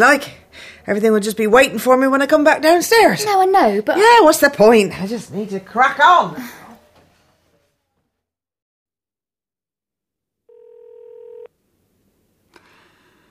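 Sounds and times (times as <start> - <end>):
speech: 0.0 - 6.6
buzzy electronic ring tone of an unanswered phone call: 10.5 - 11.5.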